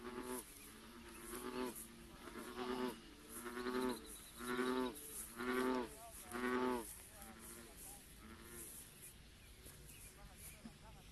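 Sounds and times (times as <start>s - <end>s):
American bullfrog Lithobates catesbeianus calling in Maryland: 0.0s - 8.8s
background hiss: 0.0s - 11.1s.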